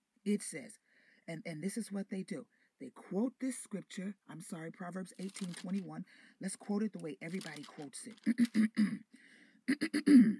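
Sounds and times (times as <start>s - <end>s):
speech: 0.2s - 10.3s
person clearing throat: 8.2s - 9.1s, 9.7s - 10.3s.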